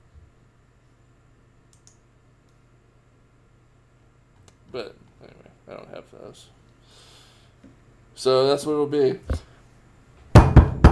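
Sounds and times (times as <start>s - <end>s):
speech: 4.7s - 7.1s, 8.2s - 9.4s
knocking on a door: 10.3s - 10.9s.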